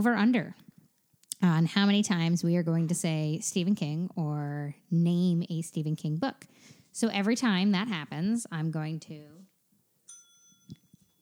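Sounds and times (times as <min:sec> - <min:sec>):
speech: 0:00.0 - 0:00.6, 0:01.4 - 0:09.4
small bell dinging: 0:10.1 - 0:11.2.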